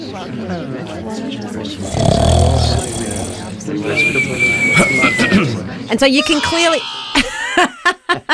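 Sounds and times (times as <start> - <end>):
voice-like murmurs and breathy noises: 0.0 - 5.9
speech: 0.1 - 8.3
loud gravelly snore: 1.8 - 3.6
laughter: 7.0 - 8.3.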